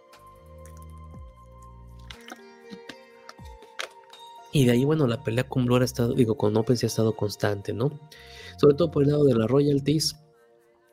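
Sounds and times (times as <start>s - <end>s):
person sipping a drink of water: 0.5s - 4.1s
speech: 4.6s - 10.2s.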